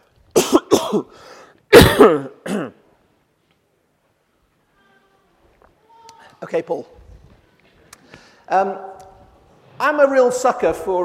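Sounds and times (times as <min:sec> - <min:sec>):
person clearing throat gravelly: 0:00.4 - 0:01.1, 0:01.7 - 0:02.9
person coughing: 0:00.4 - 0:02.8
speech: 0:00.9 - 0:02.8, 0:06.4 - 0:07.0, 0:08.5 - 0:08.9, 0:09.8 - 0:11.0.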